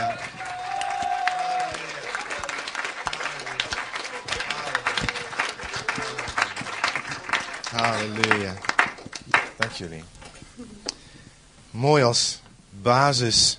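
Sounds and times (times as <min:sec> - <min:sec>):
large crowd applauding in a reverberant hall: 0:00.0 - 0:10.0
faint voices murmuring: 0:03.0 - 0:10.9
speech: 0:07.8 - 0:08.7, 0:09.6 - 0:10.9, 0:11.8 - 0:13.5.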